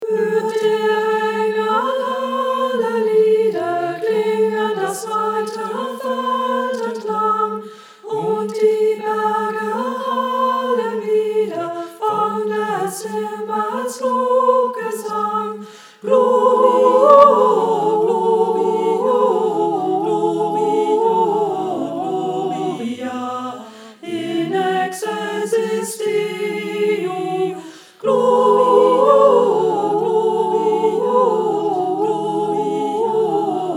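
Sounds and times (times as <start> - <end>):
choir singing: 0.0 - 33.7.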